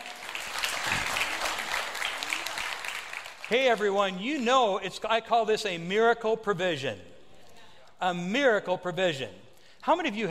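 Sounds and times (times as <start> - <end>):
audience clapping hands in praise: 0.0 - 4.4
speech: 3.5 - 7.1, 8.0 - 10.2.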